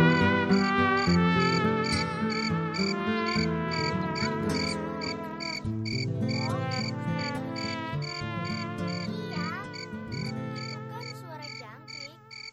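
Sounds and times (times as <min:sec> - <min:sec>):
crickets chirping at night: 0:00.1 - 0:09.0, 0:09.7 - 0:12.5
layered hum of other insect and night sounds: 0:04.5 - 0:06.9, 0:09.7 - 0:12.5.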